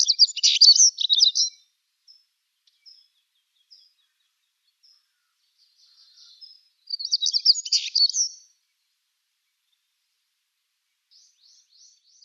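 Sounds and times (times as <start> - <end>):
Siberian stonechat loud scratchy twittering song: 0.0 - 1.5, 6.9 - 8.4.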